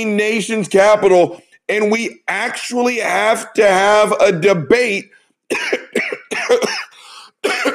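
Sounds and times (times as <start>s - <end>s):
speech: 0.0s - 7.7s
harsh coughing fit: 5.5s - 7.7s
wheezy breath: 6.9s - 7.4s.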